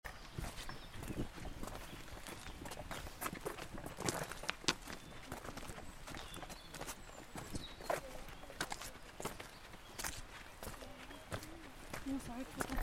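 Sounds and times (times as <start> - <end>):
footsteps walking on a path: 0.0 - 12.8.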